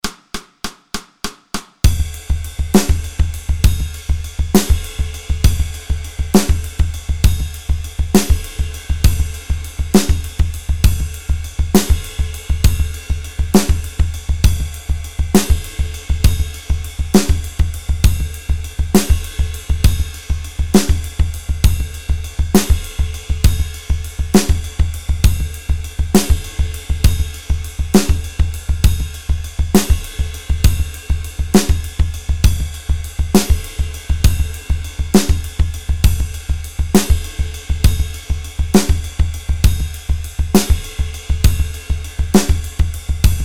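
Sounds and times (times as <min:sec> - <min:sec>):
butee drum groove: 0:00.0 - 0:43.4.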